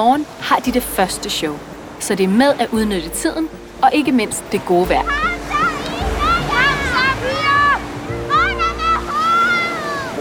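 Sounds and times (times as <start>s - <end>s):
speech: 0.0s - 5.4s
steady wash of sea water and surf: 0.0s - 10.2s
excited children shouting and calling: 5.0s - 10.2s.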